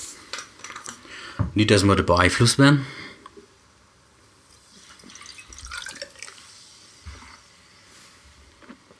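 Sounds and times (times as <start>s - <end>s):
speech: 1.6s - 3.0s
water splashing and trickling against a drinking glass being rinsed: 4.8s - 6.4s.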